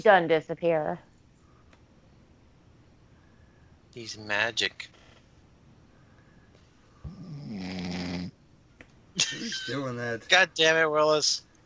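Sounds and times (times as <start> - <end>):
speech: 0.0 - 1.1, 4.0 - 5.0, 9.2 - 11.5
quiet breathing: 1.3 - 1.9, 3.0 - 3.9, 5.8 - 7.4
person snoring: 7.0 - 8.3
laughter: 9.2 - 9.8.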